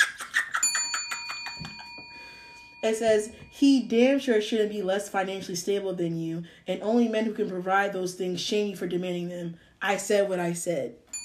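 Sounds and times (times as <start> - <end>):
bell ringing rapidly: 0.5 - 4.1
speech: 2.8 - 11.0.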